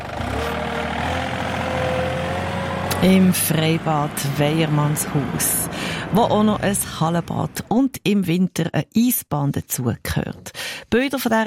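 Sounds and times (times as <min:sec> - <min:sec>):
vehicle engine rumble pulling off to empty a waste container at an open-air swimming pool: 0:00.0 - 0:07.8
speech: 0:03.0 - 0:11.4.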